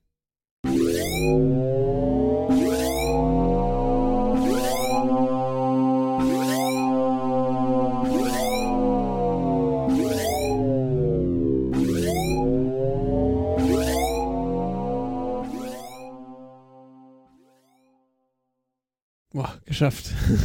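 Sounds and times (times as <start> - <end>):
electronic spoiler alarm sound effect played from a soundboard: 0.7 - 5.3, 6.2 - 17.2
speech: 1.2 - 1.8, 19.8 - 20.4.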